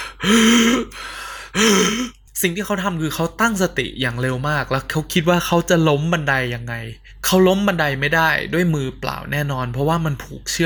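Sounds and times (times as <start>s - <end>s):
person imitating strained wheezing breath with voiced groan: 0.0s - 2.2s
speech: 0.2s - 1.0s, 1.6s - 10.6s.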